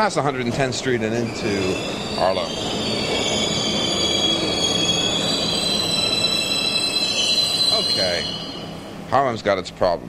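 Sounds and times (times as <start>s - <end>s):
speech: 0.0s - 3.0s, 9.1s - 10.0s
subway train rumbling along the rails in New York: 0.0s - 10.0s
subway train wheels letting out a high-pitched squeal: 1.2s - 8.8s.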